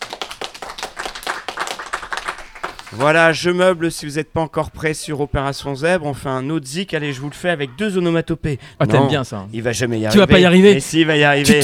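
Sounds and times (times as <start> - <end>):
small group applauding: 0.0 - 4.1
speech: 2.9 - 11.6.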